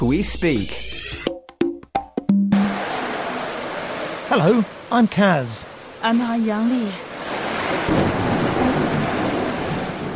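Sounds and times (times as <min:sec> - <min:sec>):
speech: 0:00.0 - 0:01.3, 0:04.3 - 0:07.1
storm wind: 0:02.5 - 0:10.1
heavy rain in a storm: 0:02.6 - 0:10.1
low thunder rumble: 0:07.8 - 0:10.1.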